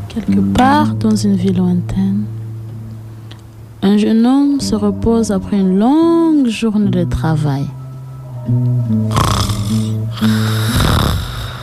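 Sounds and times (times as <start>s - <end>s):
speech: 0.2s - 2.4s, 3.8s - 7.8s, 8.4s - 11.0s
man snoring loudly: 9.1s - 11.6s.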